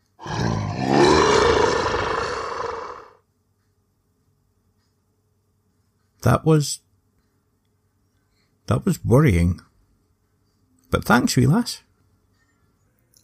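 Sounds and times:
person imitating a beast with a rasping roar: 0.2s - 3.2s
speech: 6.2s - 6.8s, 8.7s - 9.7s, 10.9s - 11.9s.

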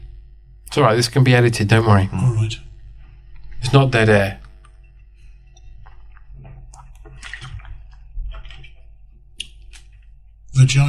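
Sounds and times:
low steady hum: 0.0s - 10.8s
speech: 0.7s - 2.7s, 3.6s - 4.4s, 10.6s - 10.8s
person drinking water: 4.4s - 10.2s.

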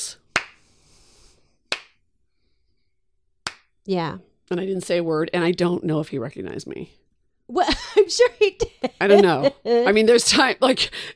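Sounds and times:
single crisp hand clap: 0.3s - 0.7s, 1.7s - 2.0s, 3.4s - 3.7s
speech: 3.9s - 11.1s.

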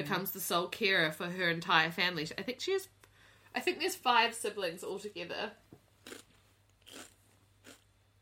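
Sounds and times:
speech: 0.0s - 6.2s
person crunching while chewing a snack: 6.0s - 8.0s.

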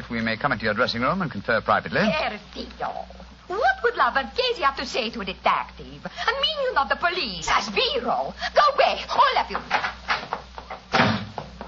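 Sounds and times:
speech: 0.1s - 10.0s
door slamming shut: 10.9s - 11.5s.

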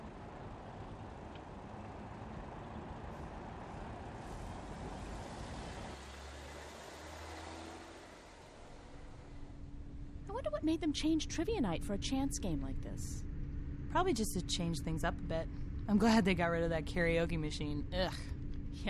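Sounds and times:
steady roar of heavy street traffic: 0.0s - 9.7s
bus rumbling by with low engine drone: 0.0s - 10.8s
speech: 10.4s - 13.3s, 13.9s - 18.8s.

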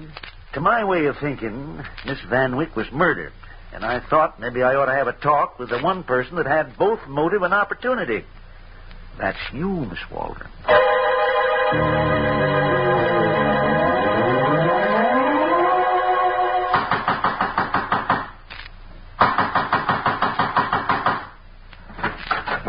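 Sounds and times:
speech: 0.5s - 8.4s, 9.2s - 11.0s, 11.7s - 12.6s
sweeping wavering musical tone: 10.7s - 16.8s
loud rapid pounding on a door: 16.7s - 18.3s, 19.2s - 21.4s.

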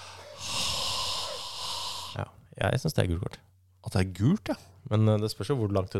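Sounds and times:
long slow warm breath exhaled against the microphone: 0.0s - 2.2s
speech: 2.2s - 5.9s.

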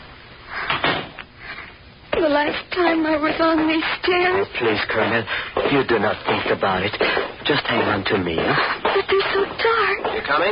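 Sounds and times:
door pushed shut with a scraping thud: 0.7s - 1.2s
speech: 2.4s - 9.1s, 10.3s - 10.5s.

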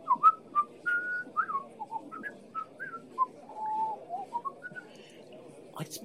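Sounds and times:
person whistling tunelessly: 0.1s - 4.9s.

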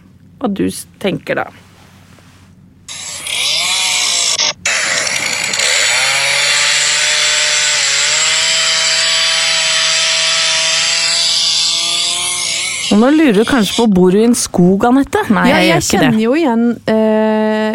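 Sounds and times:
speech: 0.4s - 1.6s, 13.0s - 17.2s
chainsaw cutting through wood: 2.9s - 14.0s.

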